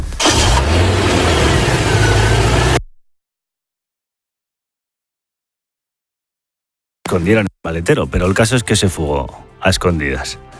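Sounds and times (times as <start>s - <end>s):
car engine cranking starting and idling: 0.2s - 2.8s
speech: 7.1s - 10.5s.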